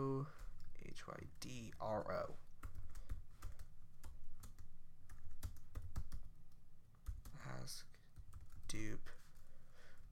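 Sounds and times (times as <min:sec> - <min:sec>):
speech: 0:00.0 - 0:02.5, 0:07.5 - 0:07.9, 0:08.7 - 0:09.2
typing on a computer keyboard: 0:02.6 - 0:06.3, 0:07.0 - 0:07.4, 0:08.2 - 0:08.9.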